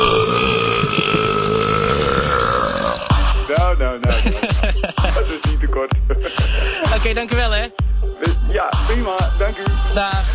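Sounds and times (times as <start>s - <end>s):
long deliberate burp: 0.0s - 3.3s
laughter: 0.7s - 2.5s, 4.0s - 7.2s
speech: 7.0s - 10.3s.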